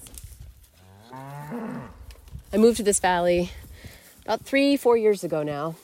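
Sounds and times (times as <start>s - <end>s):
cow mooing in mountain pasture: 0.9s - 2.0s
speech: 2.5s - 3.6s, 4.3s - 5.8s.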